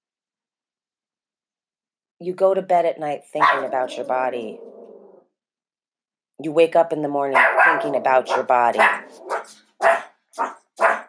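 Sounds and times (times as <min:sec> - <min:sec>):
speech: 0:02.2 - 0:04.8, 0:06.4 - 0:10.5
dog barking: 0:03.4 - 0:04.2, 0:07.3 - 0:11.0.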